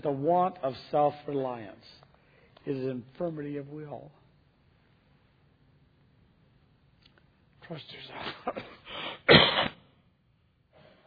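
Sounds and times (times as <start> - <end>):
speech: 0.0 - 2.0, 2.6 - 4.2, 7.7 - 9.7
person coughing: 8.2 - 9.8.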